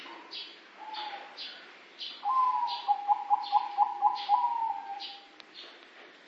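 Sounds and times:
dove cooing with quick pulsed hoots: 0.8s - 1.4s, 2.2s - 5.3s.

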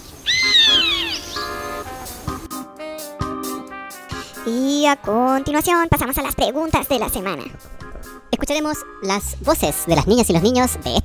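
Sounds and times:
other bird sounds: 0.0s - 2.2s
chimango caracara calling while hunting pigeons: 0.2s - 1.7s
speech: 4.4s - 7.7s, 8.4s - 11.0s.

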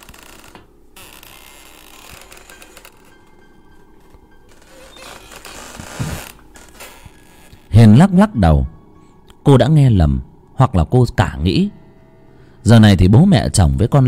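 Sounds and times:
clump of bamboo behind a kitchen creaking as it sways: 0.0s - 7.8s
speech: 7.8s - 8.8s, 9.5s - 11.8s, 12.6s - 14.0s.

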